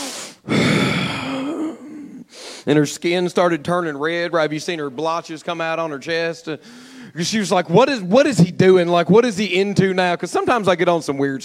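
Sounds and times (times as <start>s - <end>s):
person imitating a sharp deep intake of breath: 0.0s - 2.7s, 6.6s - 7.2s
speech: 2.6s - 11.4s.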